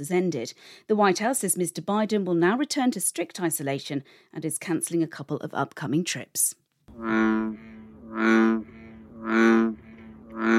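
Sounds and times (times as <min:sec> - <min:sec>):
speech: 0:00.0 - 0:09.8, 0:10.4 - 0:10.5
American bullfrog calling: 0:06.9 - 0:10.5.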